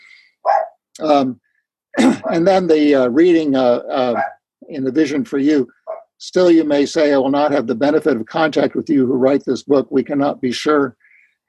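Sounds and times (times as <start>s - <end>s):
dog barking: 0.4s - 0.8s, 4.1s - 4.4s, 5.9s - 6.1s
speech: 1.0s - 11.0s.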